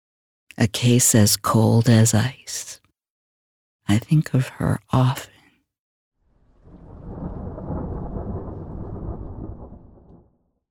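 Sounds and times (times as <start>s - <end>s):
speech: 0.6s - 2.8s, 3.9s - 5.3s
long low rumble of thunder: 6.3s - 10.6s
steady hiss of heavy rain: 6.5s - 10.1s.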